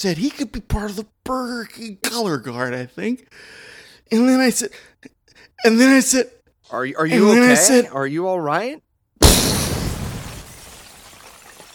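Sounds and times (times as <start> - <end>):
speech: 0.0 - 8.8
explosion sound effect of a robot's head blowing apart: 9.2 - 11.4.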